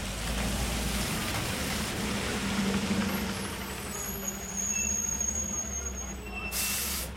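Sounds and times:
idling heavy engines at a bus depot: 0.0 - 7.1
hiss of bus air brakes: 4.0 - 7.1.

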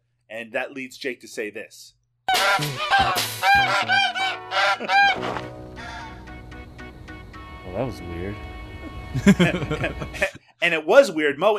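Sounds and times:
speech: 0.3 - 5.6, 7.7 - 11.5
bird squawking harsh honking calls: 2.3 - 6.2
laughter: 2.4 - 5.4, 9.1 - 10.4.

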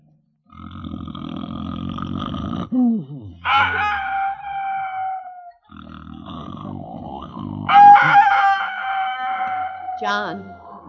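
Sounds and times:
speech: 2.7 - 3.9, 10.0 - 10.6
rooster crowing on a farm in the morning: 3.5 - 5.3, 7.7 - 10.8.

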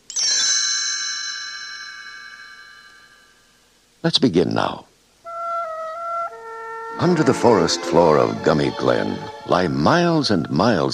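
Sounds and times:
bright bell-like page-turn chime ringing: 0.0 - 3.6
speech: 4.0 - 4.9, 7.0 - 10.9.

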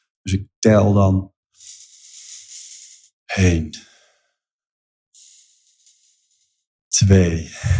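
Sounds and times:
speech: 0.2 - 1.3, 3.4 - 3.9, 7.0 - 7.7
person breathing slowly in and out: 1.6 - 3.2, 3.8 - 4.4, 5.2 - 6.7, 7.6 - 7.7.

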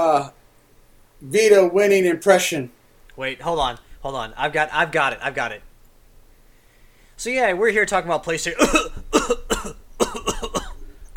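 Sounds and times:
speech: 0.0 - 0.4, 1.2 - 5.7, 7.2 - 9.0
smoker coughing deliberately: 8.6 - 11.1.

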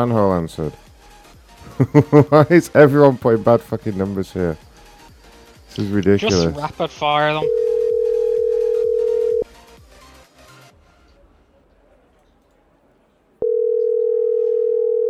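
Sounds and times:
speech: 0.0 - 0.9, 1.8 - 4.7, 5.7 - 7.6
laughter: 1.6 - 2.7
ringback tone of an outgoing phone call: 7.4 - 9.5, 13.4 - 15.0.

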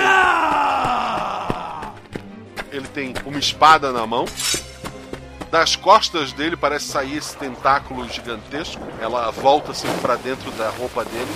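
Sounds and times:
voice imitating a monster screaming: 0.0 - 1.9
speech: 2.8 - 4.7, 5.5 - 11.3.

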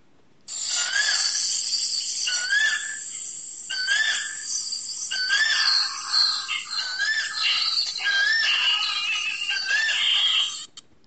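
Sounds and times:
chorus of high chattering and squealing calls: 2.2 - 10.7.

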